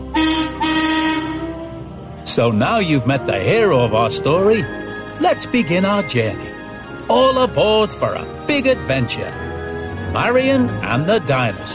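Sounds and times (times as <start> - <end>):
railway steam shovel whistle blowing: 0.0 - 1.6
speech: 2.4 - 9.5, 10.1 - 11.7.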